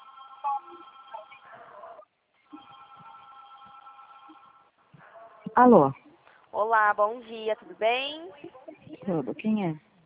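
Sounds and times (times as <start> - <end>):
faint steady electronic telephone ring of an incoming call from a bank: 0.0 - 4.8
speech: 5.6 - 6.0, 6.7 - 10.0.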